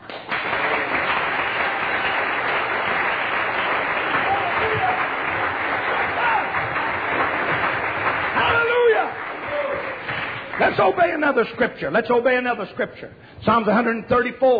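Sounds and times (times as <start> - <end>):
large crowd clapping: 0.0 - 11.4
people shouting and cheering: 4.1 - 5.2, 6.0 - 7.6, 8.3 - 10.1
speech: 10.7 - 14.5.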